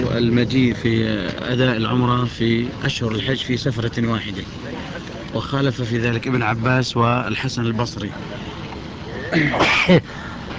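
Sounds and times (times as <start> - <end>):
speech: 0.2 - 8.5, 9.3 - 10.3
person sneezing: 9.2 - 10.0.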